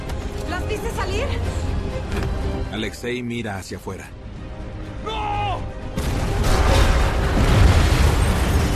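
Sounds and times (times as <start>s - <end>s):
speech: 0.6s - 4.2s
crackling debris: 6.0s - 8.7s
massive explosion with deep rumbling roar: 6.0s - 8.7s.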